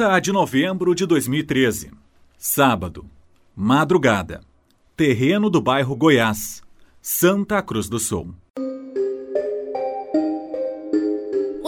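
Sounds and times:
speech: 0.0 - 8.7
police officer's telephone electronic ringtone melody: 8.6 - 11.6.

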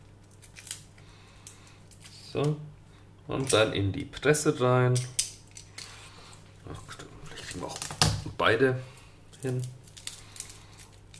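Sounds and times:
garlic clove crackling as pressed with a hand and peeled on a table: 0.0 - 2.6, 8.9 - 11.1
low steady hum: 0.0 - 11.1
speech: 2.3 - 2.7, 3.3 - 5.2, 8.4 - 9.8.

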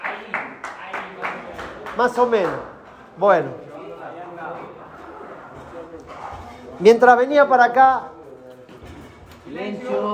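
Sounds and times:
steady rhythmic hand clapping: 0.0 - 2.8
murmur of voices: 0.8 - 10.1
speech: 2.0 - 3.7, 6.8 - 8.1, 9.5 - 10.1.

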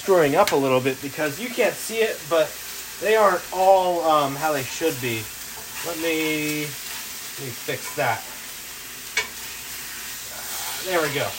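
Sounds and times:
speech: 0.0 - 6.8, 7.4 - 8.3, 10.8 - 11.3
pork medallions searing in a hot pan: 0.0 - 11.3.

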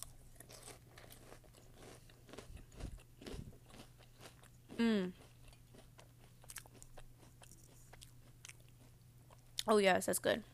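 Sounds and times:
crunching and chewing Cheerios cereal: 0.0 - 9.7
low steady hum: 0.0 - 10.5
short hummed vocal sound: 4.8 - 5.2
speech: 4.8 - 5.2, 9.7 - 10.5.

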